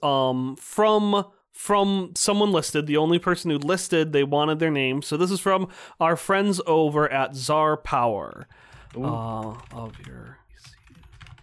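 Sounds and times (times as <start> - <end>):
speech: 0.0 - 10.4
typing on a computer keyboard: 8.6 - 11.4.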